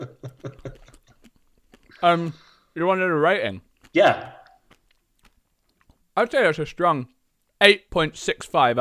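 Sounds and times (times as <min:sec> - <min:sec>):
crunchy ice lolly being chewed: 0:00.3 - 0:02.0, 0:03.8 - 0:06.0
speech: 0:02.0 - 0:04.4, 0:06.2 - 0:08.7.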